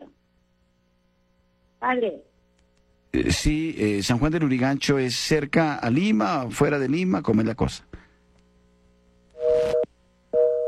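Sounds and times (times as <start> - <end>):
speech: 1.8 - 2.3, 3.1 - 8.0
busy tone after a dropped phone call: 9.4 - 10.6.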